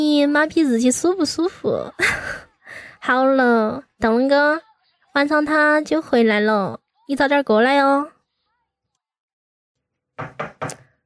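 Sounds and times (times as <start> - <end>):
speech: 0.0 - 8.2, 10.2 - 10.5
knocking on a door: 10.2 - 10.9.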